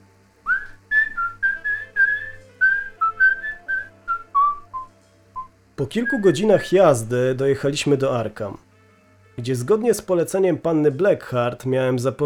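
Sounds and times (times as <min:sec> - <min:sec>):
faint low hum: 0:00.0 - 0:12.2
man whistling a lively tune: 0:00.5 - 0:06.6
speech: 0:05.8 - 0:08.6, 0:09.4 - 0:12.2.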